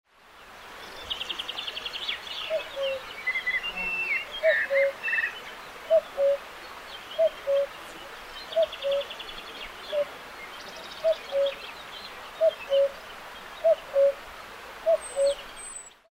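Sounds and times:
cuckoo calling: 0:02.4 - 0:06.4, 0:07.2 - 0:07.8, 0:08.5 - 0:09.2, 0:11.0 - 0:11.7, 0:12.4 - 0:13.0, 0:13.6 - 0:14.2, 0:14.8 - 0:15.9.

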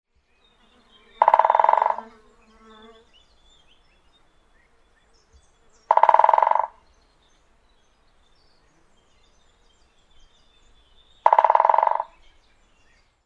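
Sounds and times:
great spotted woodpecker: 0:01.1 - 0:02.1, 0:05.8 - 0:06.9, 0:10.6 - 0:13.0.

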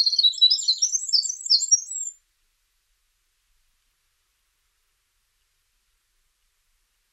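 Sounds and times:
speech: 0:00.0 - 0:00.9
winter wren singing: 0:00.0 - 0:02.2.

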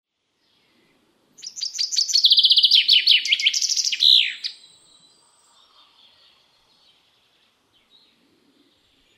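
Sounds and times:
common chaffinch singing: 0:01.4 - 0:08.1.

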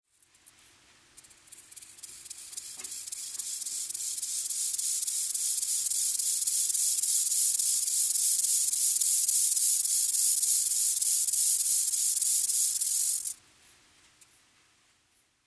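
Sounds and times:
rufous grasshopper: 0:00.0 - 0:13.4.

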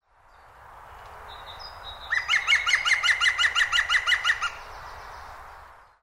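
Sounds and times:
green woodpecker: 0:02.1 - 0:04.6.

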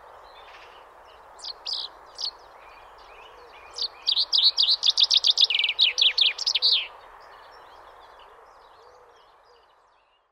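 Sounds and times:
common chaffinch song: 0:00.0 - 0:07.9.

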